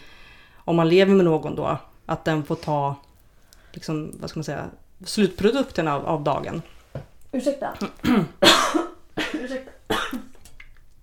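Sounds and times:
speech: 0.7 - 3.1, 3.7 - 10.0
person coughing harshly: 7.8 - 10.3.

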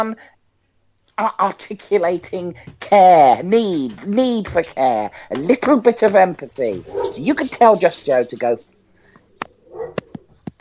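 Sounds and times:
speech: 0.0 - 0.4, 1.2 - 8.7
faint whining murmur: 6.4 - 10.6
dogs barking: 6.7 - 7.8, 9.4 - 10.3.

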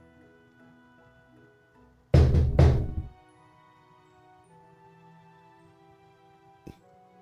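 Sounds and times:
knocks on a hollow object sealed with duct tape: 2.2 - 3.1.

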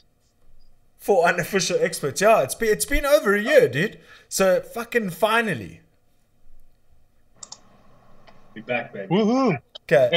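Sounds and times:
low hum: 0.0 - 10.1
speech: 1.0 - 5.8, 8.6 - 10.1
computer mouse clicks: 7.4 - 8.4.

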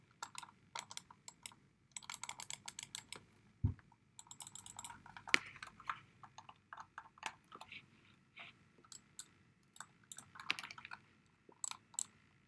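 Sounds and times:
computer mouse clicks and taps: 0.1 - 3.3, 4.2 - 7.8, 8.8 - 12.2.

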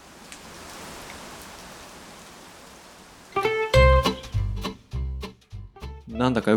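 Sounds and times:
rain falling: 0.0 - 5.0
music with plucked notes and deep thuds: 3.4 - 6.5
speech: 6.2 - 6.5.

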